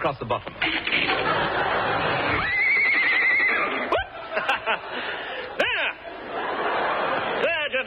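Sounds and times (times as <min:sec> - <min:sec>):
speech: 0:00.0 - 0:02.6
laughter: 0:00.6 - 0:07.8
horse whinnying: 0:02.3 - 0:04.0.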